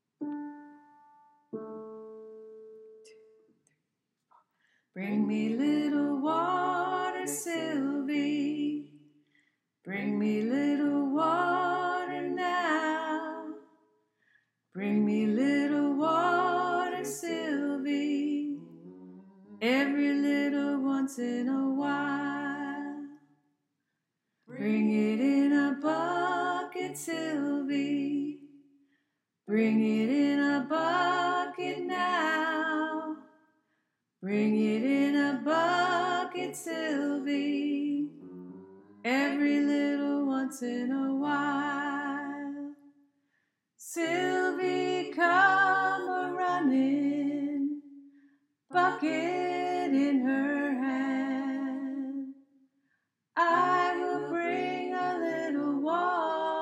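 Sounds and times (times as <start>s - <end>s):
alto choir voices: 5.0s - 9.0s, 9.9s - 13.6s, 14.8s - 23.2s, 24.5s - 28.4s, 29.5s - 33.2s, 34.3s - 42.7s, 43.9s - 47.8s, 48.7s - 52.3s, 53.4s - 56.6s.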